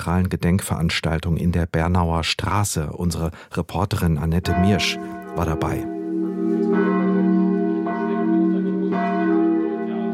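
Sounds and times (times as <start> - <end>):
speech: 0.0 - 6.9
church bells ringing from wooden frame: 4.3 - 10.1.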